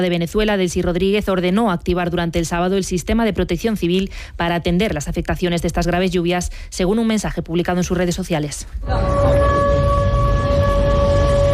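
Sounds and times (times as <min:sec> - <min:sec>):
speech: 0:00.0 - 0:09.8
constant low rumble: 0:08.7 - 0:11.5
air raid sirens wailing at night during a drone attack: 0:08.8 - 0:11.5.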